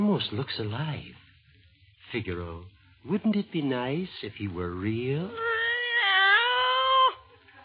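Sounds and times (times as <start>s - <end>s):
speech: 0.2s - 1.2s, 2.1s - 5.5s
cat meowing: 5.3s - 7.2s.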